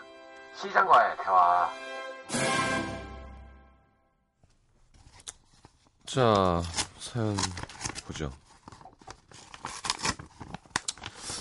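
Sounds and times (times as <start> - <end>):
speech: 0.6 - 2.8, 6.1 - 8.4
paper envelope being torn open: 6.5 - 11.3.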